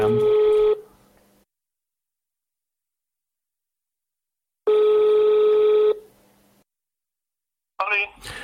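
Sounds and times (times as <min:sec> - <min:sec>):
phone ring tones over a speakerphone line: 0:00.0 - 0:00.8, 0:04.7 - 0:06.0.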